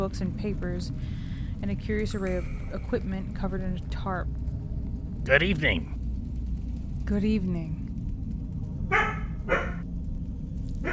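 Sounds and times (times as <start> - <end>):
speech: 0.0 - 4.5, 5.2 - 6.0, 7.1 - 7.8
low rumble: 0.0 - 10.9
small puppy barking: 8.9 - 9.8.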